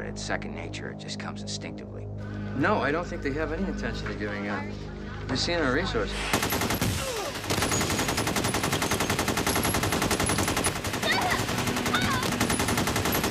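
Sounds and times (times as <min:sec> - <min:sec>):
speech: 0:00.2 - 0:07.1
continuous automatic gunfire during a shootout outside a bank: 0:06.3 - 0:13.2.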